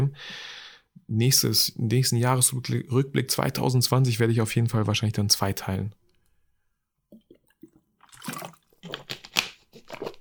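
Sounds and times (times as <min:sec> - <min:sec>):
speech: 0:00.1 - 0:06.0
water sloshing near the mouth: 0:07.1 - 0:09.2
person gulping a big gulp of water: 0:07.1 - 0:10.0.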